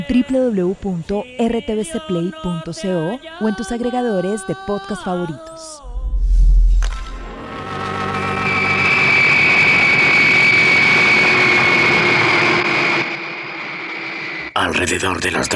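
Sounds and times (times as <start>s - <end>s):
speech: 0.0s - 5.8s, 14.8s - 15.5s
low thud: 5.9s - 7.3s
airplane landing at night beside an old hay barn: 5.9s - 15.1s.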